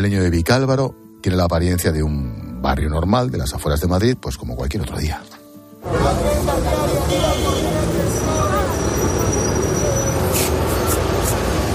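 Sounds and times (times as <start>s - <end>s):
speech: 0.0s - 7.4s
hubbub of voices: 5.8s - 11.6s
continuous rumble of passing traffic and buses on a suburban street: 5.8s - 11.7s.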